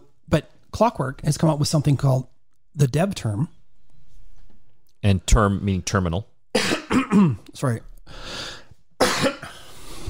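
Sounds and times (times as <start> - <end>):
speech: 0.3 - 3.6, 5.0 - 8.5
single sharp cough with raspy tail: 6.6 - 7.5, 9.0 - 9.7.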